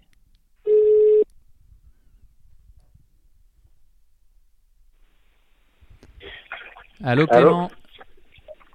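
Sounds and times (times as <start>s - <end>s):
telephone ring tone as a call is placed: 0.7s - 1.2s
speech: 7.0s - 7.8s.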